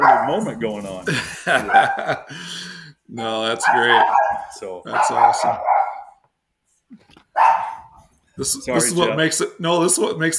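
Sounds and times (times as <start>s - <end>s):
dog barking: 0.0s - 0.5s, 1.6s - 2.2s, 3.5s - 6.2s, 7.3s - 8.0s
speech: 0.3s - 5.7s, 8.4s - 10.3s
laughter: 1.0s - 2.9s.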